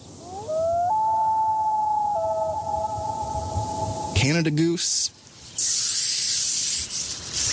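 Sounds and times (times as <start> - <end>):
common loon giving a long mournful wailing call: 0.2 - 4.5
speech: 4.2 - 5.2.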